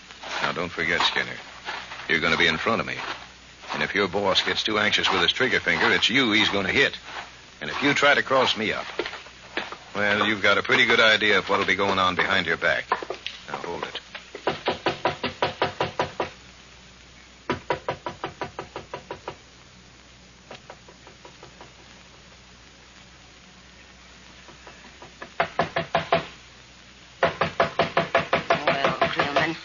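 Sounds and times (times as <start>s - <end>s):
faint hum: 0.0s - 29.6s
speech: 0.5s - 9.2s, 10.0s - 13.0s
loud rapid knocking on a door: 14.4s - 16.4s, 17.5s - 19.4s, 27.2s - 29.5s.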